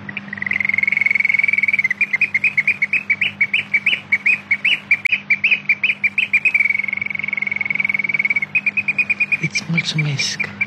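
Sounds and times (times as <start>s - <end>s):
faint low hum: 0.0s - 10.6s
nightingale singing: 0.0s - 10.6s
speech: 9.6s - 10.6s.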